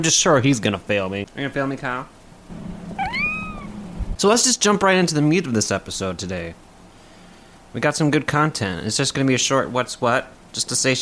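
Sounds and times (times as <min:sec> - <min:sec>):
speech: 0:00.0 - 0:02.6, 0:04.2 - 0:06.6, 0:07.7 - 0:11.0
low steady hum: 0:01.5 - 0:07.6
cat meowing: 0:02.9 - 0:03.9.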